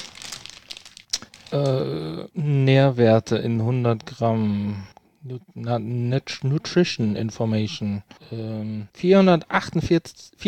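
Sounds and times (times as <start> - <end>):
paper wrapping crinkling as a large praline is unwrapped: 0.0 - 1.7
speech: 1.5 - 10.4.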